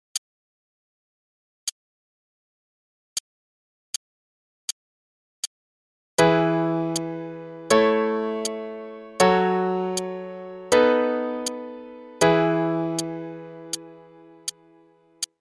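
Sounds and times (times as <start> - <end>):
E major chord progression: 6.2 - 15.0.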